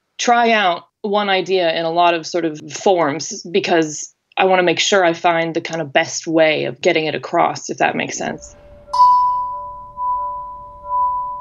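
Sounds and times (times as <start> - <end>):
speech: 0.2 - 9.0
bell with a small speaker inside ringing: 8.4 - 11.3.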